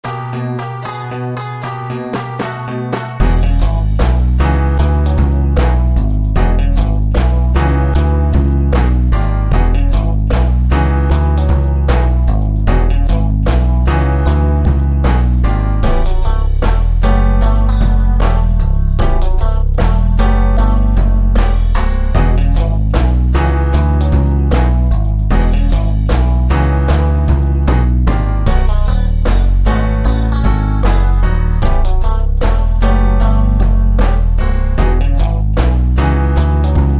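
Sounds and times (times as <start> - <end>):
12 bar blues boogie woogie bass line in E: 0.0 - 36.9.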